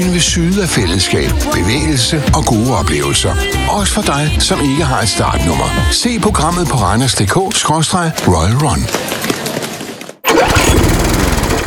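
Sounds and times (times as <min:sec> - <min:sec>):
speech: 0:00.0 - 0:09.6
lawn mower engine running: 0:10.3 - 0:11.6.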